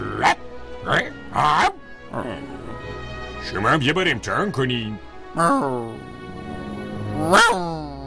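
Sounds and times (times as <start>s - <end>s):
person imitating a dog barking loudly: 0.0s - 2.5s, 7.1s - 8.0s
speech: 3.5s - 6.2s, 7.2s - 7.8s.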